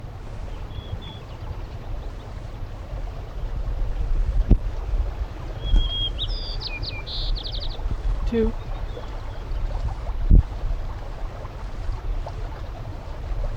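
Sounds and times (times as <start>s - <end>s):
wind noise: 0.0s - 13.5s
white-crowned sparrow song: 0.3s - 2.6s, 5.5s - 9.7s
speech: 8.3s - 8.6s.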